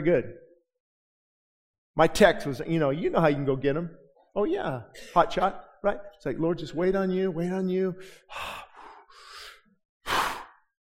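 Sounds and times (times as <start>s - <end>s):
speech: 0.0s - 0.4s, 2.0s - 8.7s
heavy exhale: 8.0s - 10.6s
person breathing in deeply: 8.0s - 10.7s.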